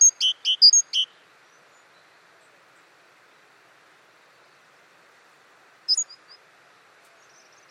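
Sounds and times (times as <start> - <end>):
Great tit calls with sharp high and lower notes: 0.0 - 1.2, 5.9 - 6.4.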